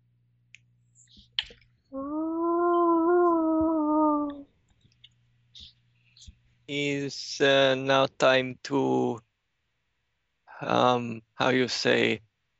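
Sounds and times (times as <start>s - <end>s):
long tonal howl from outside: 2.0s - 4.4s
speech: 6.7s - 9.3s, 10.6s - 12.3s.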